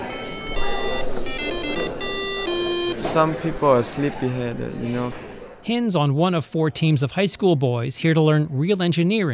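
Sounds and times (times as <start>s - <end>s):
homemade electronic alarm clock ringing: 0.0s - 3.4s
speech: 3.1s - 9.3s.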